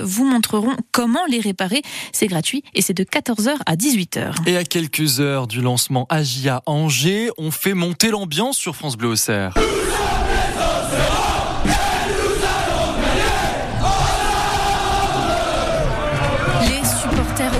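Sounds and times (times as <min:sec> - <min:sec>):
speech: 0:00.0 - 0:12.4
large stadium crowd of football supporters chanting and roaring: 0:09.6 - 0:17.5.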